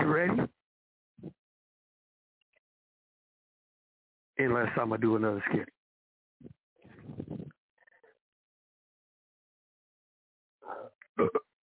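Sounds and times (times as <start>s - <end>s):
speech: 0.1s - 0.6s, 4.4s - 5.8s, 10.7s - 11.4s
loud drawn-out belching: 10.7s - 11.5s.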